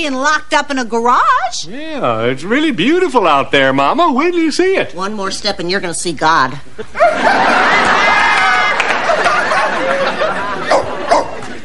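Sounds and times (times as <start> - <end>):
speech: 0.0 - 7.8
laughter: 6.8 - 11.6
dog barking sharply: 10.7 - 11.4.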